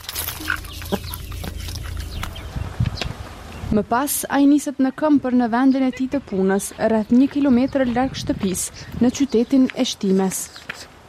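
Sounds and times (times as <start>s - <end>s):
chickens clucking in a garden while being fed: 0.2s - 3.6s
speech: 3.7s - 10.9s.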